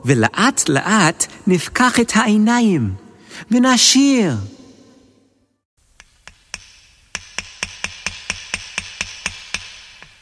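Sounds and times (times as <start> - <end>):
speech: 0.0 - 4.6
hammer driving nails into sukkah walls: 6.0 - 10.1.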